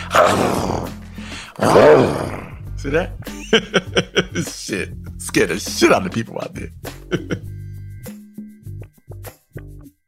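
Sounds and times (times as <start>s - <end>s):
man imitating a tiger roar: 0.0s - 2.7s
speech: 1.6s - 7.4s
laughter: 3.3s - 4.8s, 7.0s - 7.5s.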